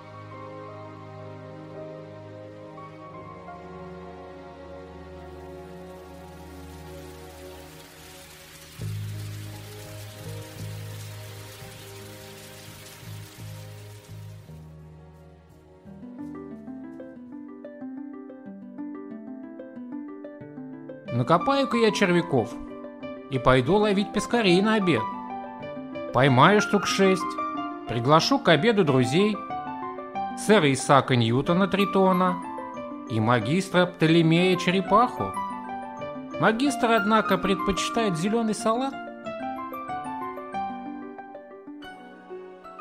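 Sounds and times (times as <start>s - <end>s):
large raindrops splashing on a pond: 5.4s - 14.8s
speech: 21.2s - 22.7s, 23.3s - 25.1s, 26.1s - 29.4s, 30.4s - 32.5s, 33.1s - 35.4s, 36.4s - 39.0s.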